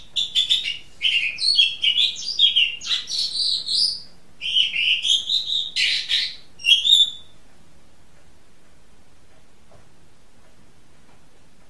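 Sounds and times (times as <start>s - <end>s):
Oriental magpie-robin song: 0.0s - 7.4s.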